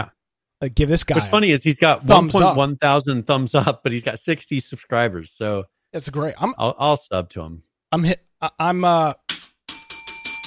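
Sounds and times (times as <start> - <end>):
speech: 0.0 - 9.2
small bright bell ringing: 9.7 - 10.4.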